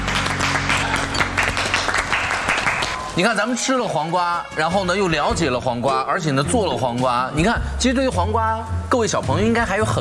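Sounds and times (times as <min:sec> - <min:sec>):
group applause: 0:00.0 - 0:04.6
speech: 0:03.2 - 0:09.9.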